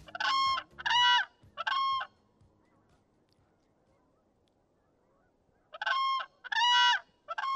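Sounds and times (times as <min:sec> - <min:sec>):
whooping crane trumpeting bugle calls: 0:00.0 - 0:02.2, 0:04.9 - 0:07.5.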